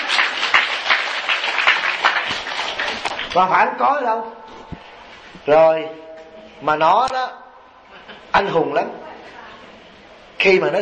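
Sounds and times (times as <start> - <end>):
audience clapping: 0.0 - 3.5
speech: 3.4 - 4.4, 5.5 - 7.4, 8.4 - 9.0, 10.4 - 10.8.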